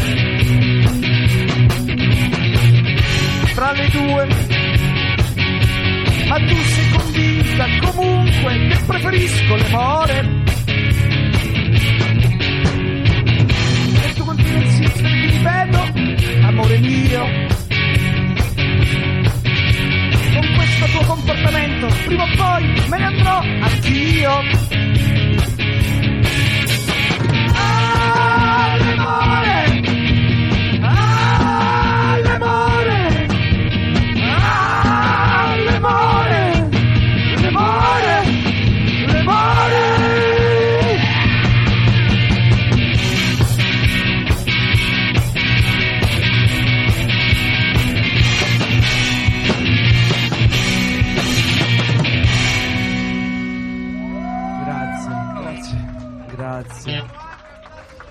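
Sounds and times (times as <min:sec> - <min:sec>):
loud distorted rock track with heavy guitars and pounding drums: 0:00.0 - 0:57.0
speech: 0:06.4 - 0:10.6, 0:20.7 - 0:24.8
man yelling and screaming: 0:27.4 - 0:29.7, 0:30.9 - 0:33.1, 0:34.2 - 0:36.6, 0:37.5 - 0:38.3, 0:39.1 - 0:41.2, 0:54.1 - 0:56.3.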